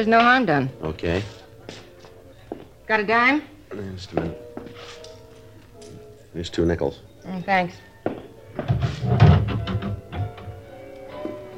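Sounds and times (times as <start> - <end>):
speech: 0.0 - 1.8, 2.9 - 5.0, 6.3 - 9.3
door swinging and bumping shut: 8.6 - 10.6.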